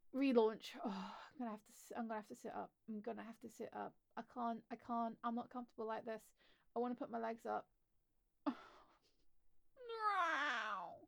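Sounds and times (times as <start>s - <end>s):
speech: 0.1s - 7.7s
person imitating a cat meow: 9.8s - 11.0s.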